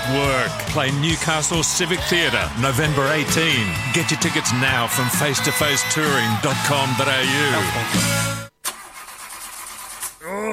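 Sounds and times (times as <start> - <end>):
speech: 0.1 - 8.4
car engine cranking and revving upward: 8.6 - 9.7.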